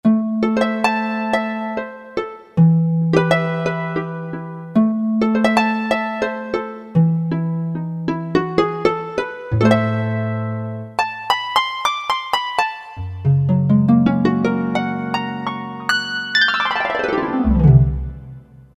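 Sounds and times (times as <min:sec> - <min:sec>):
synthesizer harp patch: 0:00.0 - 0:18.7.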